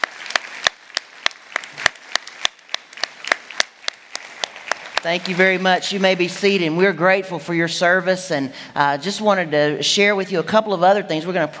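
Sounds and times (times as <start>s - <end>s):
audience applauding: 0.0s - 6.8s
speech: 5.0s - 11.5s.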